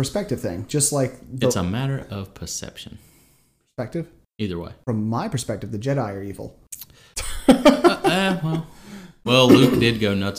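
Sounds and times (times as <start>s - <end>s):
speech: 0.0s - 3.1s, 3.8s - 10.3s
laughter: 7.2s - 8.7s
throaty coughing: 9.5s - 10.0s.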